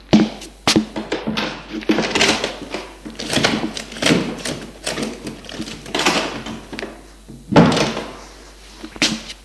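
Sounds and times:
linen rustling on cupboard shelves: 0.0 - 9.4
cupboard door bumping: 0.8 - 8.2.

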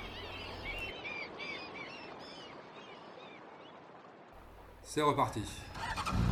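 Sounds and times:
seagulls calling: 0.0 - 3.8
speech: 4.9 - 6.2.

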